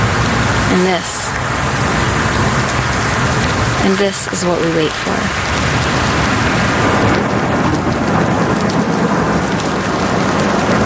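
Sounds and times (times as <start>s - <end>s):
deep rumble of monsoon thunder: 0.0s - 10.8s
heavy monsoon rain pouring: 0.0s - 10.8s
speech: 0.7s - 1.4s, 3.8s - 6.1s.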